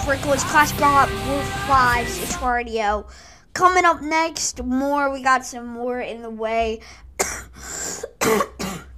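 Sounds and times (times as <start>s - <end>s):
speech: 0.1s - 7.0s, 8.3s - 8.5s
harsh raspy coughing: 7.2s - 8.9s.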